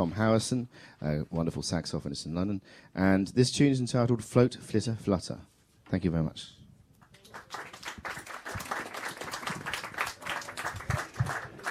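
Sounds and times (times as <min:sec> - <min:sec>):
speech: 0:00.0 - 0:06.6
audience applause at a live jazz concert: 0:07.2 - 0:11.6.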